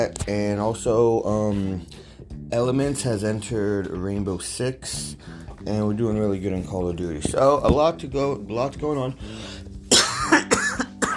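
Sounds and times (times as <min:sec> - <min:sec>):
speech: 0:00.0 - 0:09.7
harsh raspy coughing: 0:09.9 - 0:11.1
throat clearing: 0:09.9 - 0:11.1.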